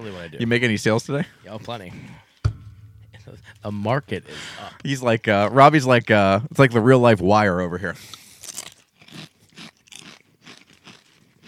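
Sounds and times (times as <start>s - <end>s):
speech: 0.0s - 2.3s, 3.2s - 8.2s
person crunching on a crunchy honey-flavored spicy snack: 8.1s - 11.4s.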